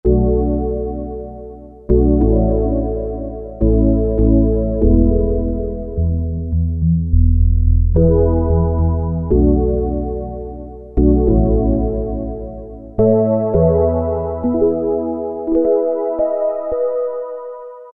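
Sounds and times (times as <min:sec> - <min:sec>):
dark synth piano on Roland Juno-106 factory preset: 0:00.0 - 0:17.9.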